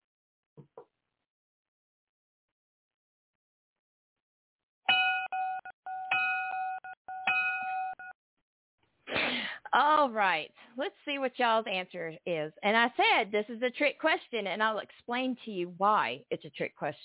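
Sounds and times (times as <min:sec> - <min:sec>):
electronic bell ringing: 0:04.9 - 0:08.1
speech: 0:09.7 - 0:17.0.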